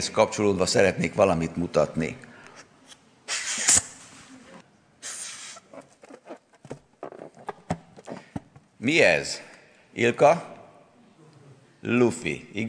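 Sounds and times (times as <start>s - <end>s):
speech: 0.0s - 2.3s, 8.8s - 10.6s, 11.8s - 12.6s
breathy puffs of air blown into a balloon: 3.3s - 3.9s, 5.0s - 8.2s
balloon rubbery squeaks and rustles: 5.1s - 8.3s.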